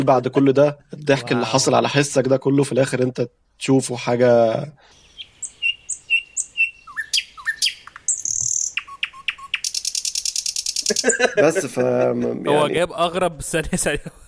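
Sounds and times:
speech: 0.0 - 5.0, 10.9 - 14.2
varied bird calls with chirps, whistles and rattling trill: 4.9 - 11.4
laughter: 10.8 - 12.8, 13.6 - 14.2.

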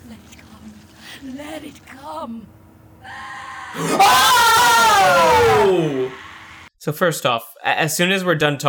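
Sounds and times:
speech: 1.2 - 5.2, 6.8 - 8.6
shrill piercing scream: 3.0 - 6.7.

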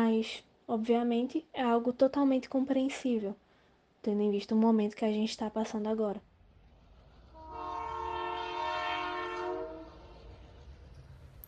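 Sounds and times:
speech: 0.1 - 3.4, 4.0 - 6.3
steady low rumble of a moving train: 6.2 - 11.4
loud train horn blast: 7.3 - 10.4.

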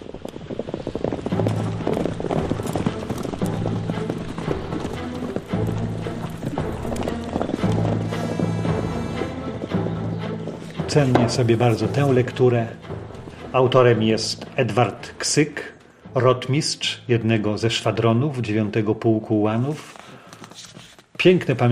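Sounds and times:
horse hooves clip-clopping: 0.0 - 16.0, 19.7 - 21.7
speech: 10.9 - 12.8, 13.5 - 19.9, 21.2 - 21.7.

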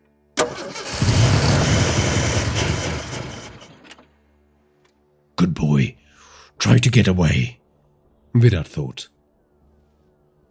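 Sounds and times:
vehicle engine starting: 0.4 - 4.1
speech: 6.6 - 7.6, 8.4 - 9.2.

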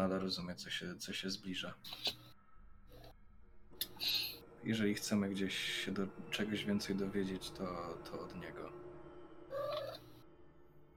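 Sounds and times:
speech: 0.0 - 2.2, 3.8 - 8.9
low steady hum: 0.0 - 10.9
cat meowing: 9.5 - 10.0.

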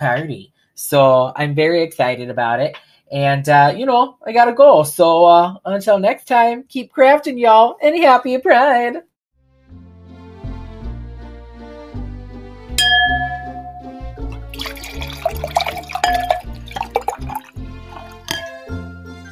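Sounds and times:
speech: 0.0 - 9.1
steady musical backing: 9.4 - 19.2
glass clink: 12.8 - 18.8
sherry being poured into a glass: 13.1 - 18.7.

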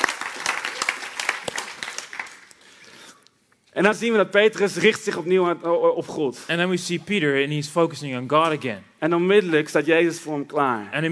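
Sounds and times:
audience applauding: 0.0 - 2.7
speech: 3.8 - 11.1.

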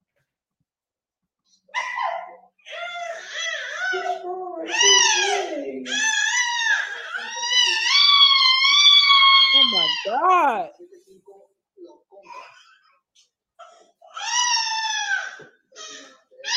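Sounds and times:
baby boy crying and screaming loudly: 4.7 - 10.7, 14.2 - 16.5.

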